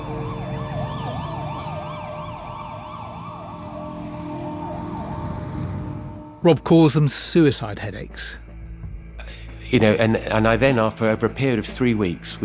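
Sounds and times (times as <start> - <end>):
ambulance siren wailing: 0.0 - 6.5
speech: 6.4 - 8.4, 9.7 - 12.4.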